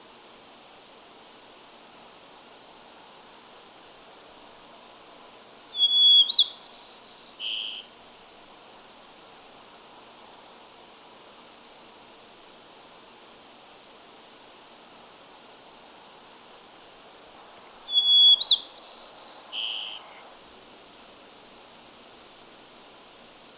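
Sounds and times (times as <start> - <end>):
white-crowned sparrow Zonotrichia leucophrys gambelii singing: 5.8 - 7.9, 17.5 - 20.4.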